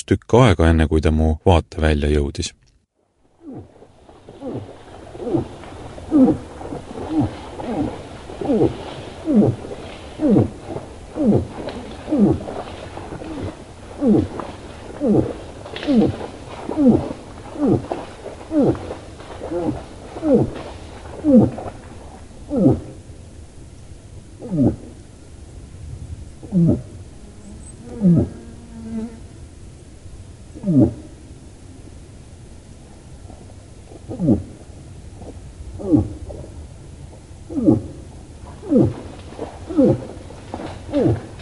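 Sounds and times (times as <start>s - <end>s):
speech: 0.1s - 2.6s, 3.5s - 3.7s, 4.5s - 6.5s, 8.5s - 10.5s, 11.2s - 12.6s, 14.0s - 21.8s, 22.5s - 22.9s, 24.4s - 24.8s, 26.5s - 26.9s, 28.0s - 28.4s, 30.6s - 31.0s, 34.1s - 34.5s, 35.8s - 36.2s, 37.5s - 37.9s, 38.7s - 40.1s, 40.9s - 41.3s
moose giving low moaning grunts: 3.4s - 23.0s, 24.4s - 24.9s, 26.4s - 28.6s, 30.5s - 31.2s, 35.2s - 36.5s, 37.5s - 41.4s.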